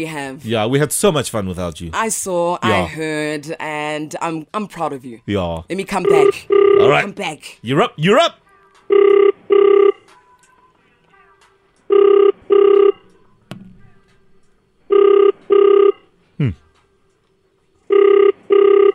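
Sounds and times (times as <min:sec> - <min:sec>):
speech: 0:00.0 - 0:09.1, 0:16.4 - 0:16.6
ringback tone of an outgoing telephone call: 0:06.0 - 0:07.0, 0:08.9 - 0:10.1, 0:11.9 - 0:13.2, 0:14.9 - 0:16.1, 0:17.9 - 0:18.9.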